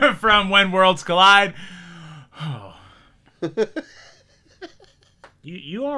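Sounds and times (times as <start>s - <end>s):
speech: 0.2s - 1.8s, 2.4s - 2.6s, 3.4s - 4.1s, 5.4s - 5.9s
man breathing heavily and gasping: 1.6s - 4.3s
laughter: 3.4s - 5.2s.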